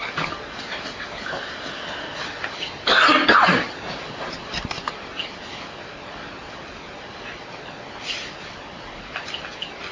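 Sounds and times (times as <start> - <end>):
man coughing with dried-out throat: 2.8 - 3.8.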